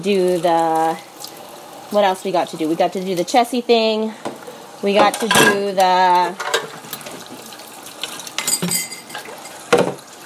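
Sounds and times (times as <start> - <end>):
speech: 0.0 - 1.1, 1.9 - 6.5
running water: 0.0 - 10.2
pots and cutlery clinking while washing dishes: 5.0 - 6.8, 8.4 - 10.0.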